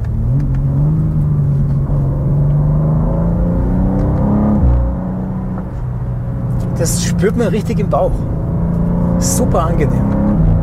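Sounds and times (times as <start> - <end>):
BMW M2 engine droning under load: 0.0 - 10.6
speech: 6.8 - 8.4, 9.2 - 10.3.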